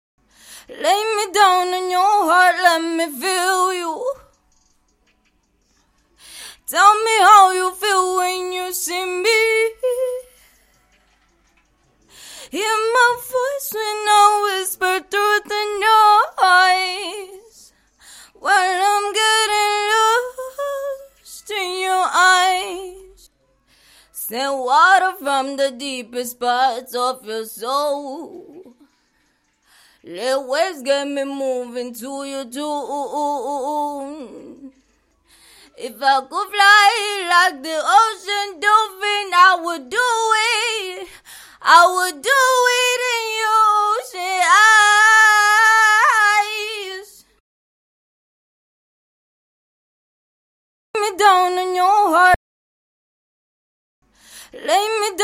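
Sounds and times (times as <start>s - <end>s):
female pop singing: 0.6s - 4.3s, 6.4s - 10.4s, 12.4s - 17.7s, 18.3s - 23.3s, 24.2s - 28.8s, 30.0s - 34.7s, 35.6s - 47.3s, 51.0s - 52.4s, 54.5s - 55.2s.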